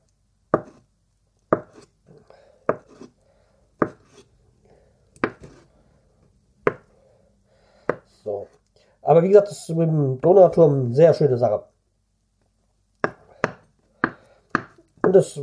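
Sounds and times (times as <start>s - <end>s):
knife chopping mozzarella into small pieces on a board: 0.5s - 0.8s, 1.5s - 1.9s, 2.7s - 3.1s, 3.8s - 4.2s, 5.2s - 5.6s, 13.0s - 15.2s
speech: 9.1s - 11.7s, 15.1s - 15.4s.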